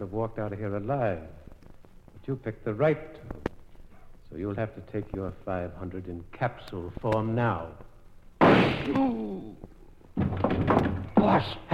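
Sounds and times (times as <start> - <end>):
speech: 0.0 - 1.4, 2.3 - 3.5, 4.3 - 7.9, 8.5 - 9.8, 10.7 - 11.7
gunshot in an old radio mystery drama: 8.4 - 9.0.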